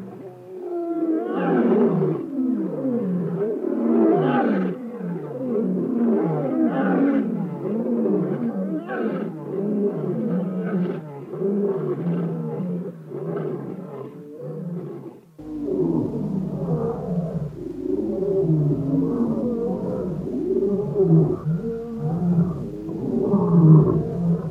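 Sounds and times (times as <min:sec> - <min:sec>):
African lion roaring: 0:00.6 - 0:24.4
deep background rumble: 0:15.4 - 0:24.4.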